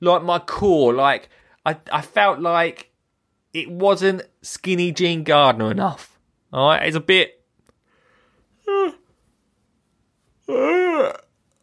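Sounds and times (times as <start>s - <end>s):
speech: 0.0s - 2.9s, 3.6s - 7.4s, 8.7s - 9.0s, 10.5s - 11.2s
person yawning aloud: 8.6s - 9.1s, 10.4s - 11.3s.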